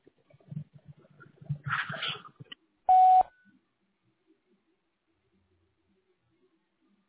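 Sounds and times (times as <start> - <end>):
soft indistinct sounds: 0.0 - 7.0
voicemail recording electronic beep tone: 2.9 - 3.3.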